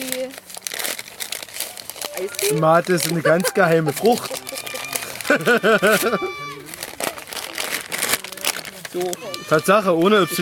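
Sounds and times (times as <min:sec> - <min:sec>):
crinkly packaging being unwrapped: 0:00.0 - 0:10.4
speech: 0:02.2 - 0:04.5, 0:05.3 - 0:06.5, 0:09.0 - 0:10.4
laughter: 0:02.8 - 0:07.0.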